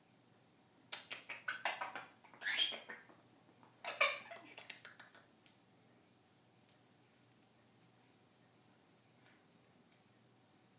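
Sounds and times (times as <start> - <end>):
squeaky parrot chirps: 0.9 - 3.1, 3.8 - 5.0.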